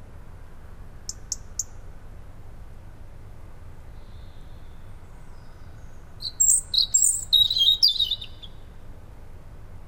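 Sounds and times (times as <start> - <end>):
Erithacus rubecula European robin singing ticking notes and a warbled phrase: 1.1 - 1.8, 4.0 - 8.7.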